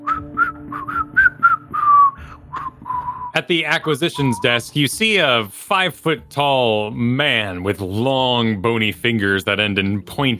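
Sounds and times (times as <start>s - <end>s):
person whistling a short tune: 0.0s - 3.4s, 4.0s - 4.7s
speech: 3.4s - 10.3s.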